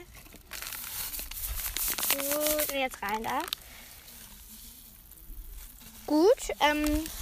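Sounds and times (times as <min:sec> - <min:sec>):
plastic bag containing dye shaken and crinkling: 0:00.0 - 0:07.2
speech: 0:02.2 - 0:03.6, 0:06.1 - 0:07.2.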